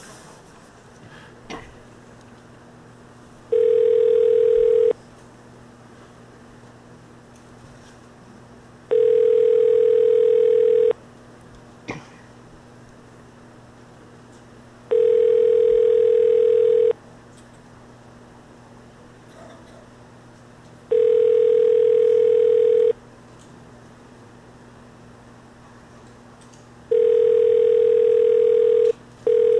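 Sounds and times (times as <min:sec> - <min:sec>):
faint hum: 0:00.0 - 0:29.5
outgoing phone call ringback tones: 0:03.5 - 0:05.0, 0:08.9 - 0:11.0, 0:14.9 - 0:17.0, 0:20.9 - 0:23.0, 0:26.9 - 0:29.5.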